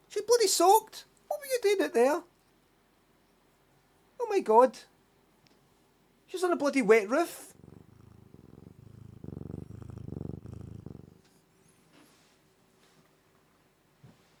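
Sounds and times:
speech: 0.2 - 2.3, 4.2 - 4.9, 6.3 - 7.5
cat purring: 6.6 - 11.9
faint rustle: 7.3 - 13.2.

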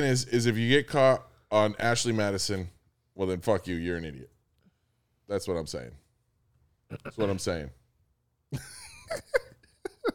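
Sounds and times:
speech: 0.0 - 4.3, 5.3 - 6.0, 6.9 - 7.8, 8.5 - 9.4
person clearing throat in a rough rasping series: 6.9 - 7.4.

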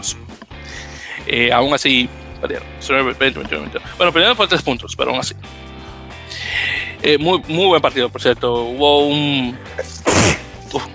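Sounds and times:
speech: 0.0 - 5.7, 7.0 - 10.0
person sneezing: 9.7 - 10.9.

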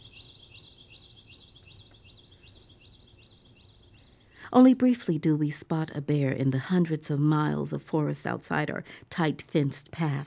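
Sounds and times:
birds chirping outdoors in lush green forest: 0.0 - 4.5
speech: 4.5 - 10.2.

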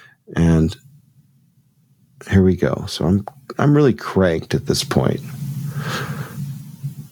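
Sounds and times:
steady low air conditioner hum through high-gain microphone: 0.0 - 7.0
speech: 0.3 - 0.9, 2.2 - 6.2
breathy hiss: 4.6 - 7.0.

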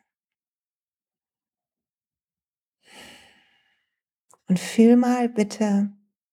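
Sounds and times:
deep breath in and out with a hand on the heart: 2.9 - 4.0
speech: 4.5 - 6.0.

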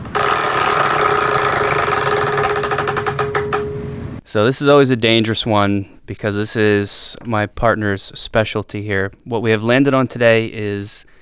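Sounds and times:
spinning prize wheel ticking: 0.0 - 4.0
speech: 4.3 - 11.1.

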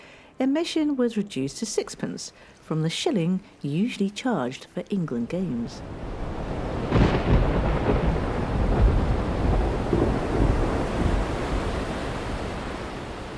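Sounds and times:
speech: 0.4 - 6.2
wind: 5.6 - 13.3
sharp thunder crack: 5.8 - 13.0
heavy rain: 5.8 - 13.3.

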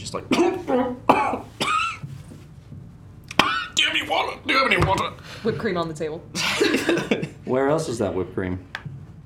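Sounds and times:
speech: 0.1 - 1.1, 4.6 - 8.8
person coughing hard: 0.3 - 2.1, 3.3 - 3.8, 6.4 - 7.3.

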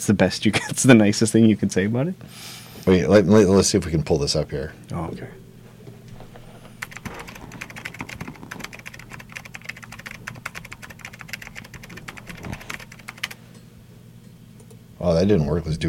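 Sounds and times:
speech: 0.0 - 5.4, 15.0 - 15.8
low steady hum: 0.0 - 15.8
typing on a computer keyboard: 6.8 - 13.4.

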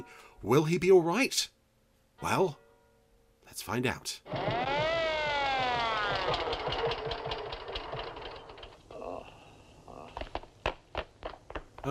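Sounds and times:
speech: 0.0 - 1.6, 2.2 - 2.6, 3.5 - 4.6
air ambulance siren wailing: 4.3 - 8.3
air ambulance rotor chopping: 4.3 - 8.9
thumps: 4.3 - 8.9, 10.0 - 11.8
air ambulance engine drone: 4.3 - 9.4.

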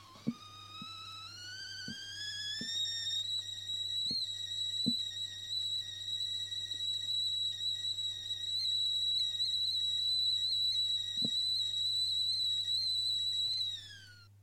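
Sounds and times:
tea kettle whistling: 0.0 - 14.3.

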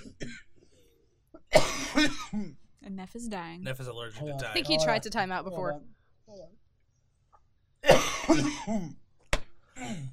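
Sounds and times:
man coughing: 0.0 - 0.6, 1.4 - 2.6, 7.8 - 9.0
speech: 3.0 - 6.6, 7.9 - 9.0.

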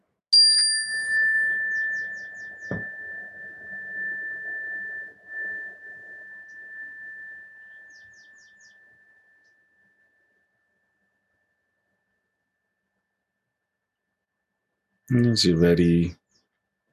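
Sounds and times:
meditation bell struck to close a meditation: 0.4 - 10.4
speech: 15.1 - 16.2.

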